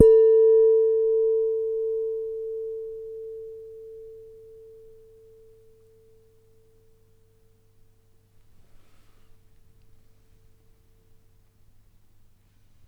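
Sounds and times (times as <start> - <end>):
soft hit on a large wine glass: 0.0 - 5.5.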